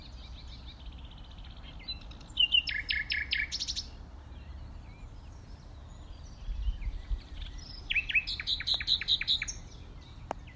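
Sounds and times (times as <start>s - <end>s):
common nightingale Luscinia megarhynchos singing: 0.0s - 10.5s
faint low background hiss: 0.0s - 10.5s.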